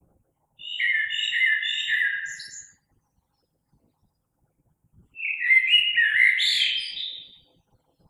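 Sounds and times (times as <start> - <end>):
common blackbird singing mellow warbled phrases: 0.6 - 2.8, 5.2 - 7.5.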